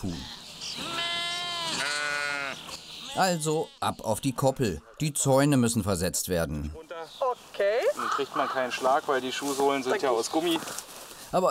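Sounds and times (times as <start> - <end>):
speech: 0.0 - 1.0, 3.2 - 6.8, 8.2 - 11.4
sheep bleating on a farm pasture: 0.0 - 5.0.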